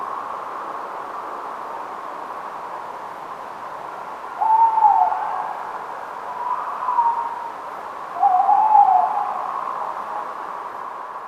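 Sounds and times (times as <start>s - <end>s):
steady hiss: 0.0s - 11.2s
tawny owl hooting at night in Somerset: 4.4s - 5.6s, 6.3s - 7.5s, 8.2s - 9.9s.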